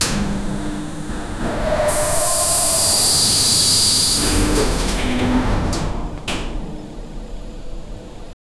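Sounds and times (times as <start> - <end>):
gas releasing from an elevator vent: 0.0 - 6.2.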